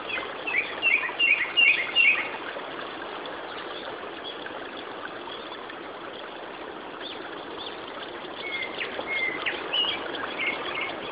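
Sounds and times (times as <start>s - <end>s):
Japanese thrush Turdus cardis uttering sharp high whistled notes: 0.1s - 2.3s, 8.4s - 11.0s.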